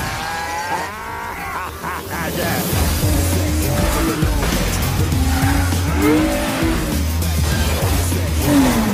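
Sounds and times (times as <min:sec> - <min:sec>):
laughter: 0:00.1 - 0:06.7
speeding car engine roaring: 0:02.2 - 0:08.9
car tires squealing: 0:02.3 - 0:08.9.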